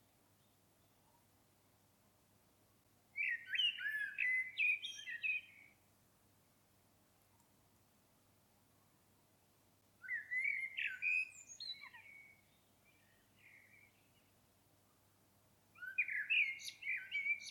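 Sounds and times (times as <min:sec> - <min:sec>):
Common blackbird singing, Turdus merula: 0:03.2 - 0:05.8, 0:10.0 - 0:14.3, 0:15.8 - 0:17.4.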